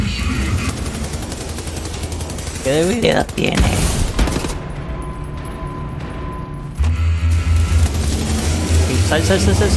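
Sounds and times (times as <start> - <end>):
gunfire from enemy soldiers in a video game: 0.2 - 4.7, 7.4 - 9.7
speech: 2.7 - 4.0, 9.1 - 9.7.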